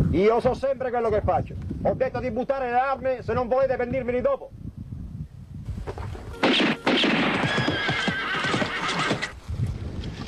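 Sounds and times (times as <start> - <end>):
speech: 0.1 - 4.6
hoof clatter: 5.9 - 9.4
horse whinnying: 6.4 - 9.4.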